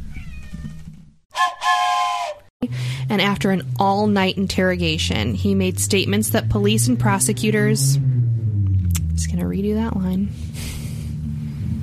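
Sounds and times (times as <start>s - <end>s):
cat meowing: 0.0s - 0.8s
speech: 2.6s - 8.2s, 9.2s - 10.7s
low rumble: 2.6s - 11.8s.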